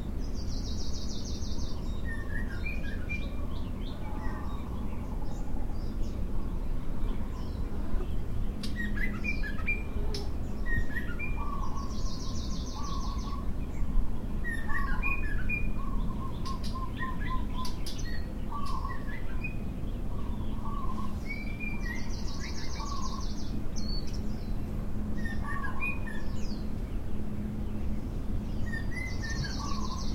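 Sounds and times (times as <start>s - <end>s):
morning birdsong: 0.0s - 30.1s.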